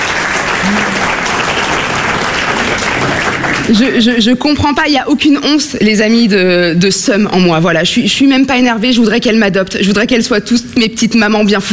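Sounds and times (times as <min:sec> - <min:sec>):
audience applause with many hands clapping: 0:00.0 - 0:04.3
faint crowd voices: 0:00.0 - 0:04.4
speech: 0:03.7 - 0:11.7.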